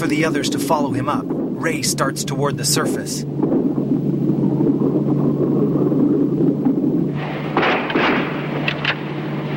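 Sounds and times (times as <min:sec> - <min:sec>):
speech: 0:00.0 - 0:03.6
steady low engine drone: 0:00.0 - 0:09.5
gunfire from a boat's bow: 0:07.2 - 0:09.1.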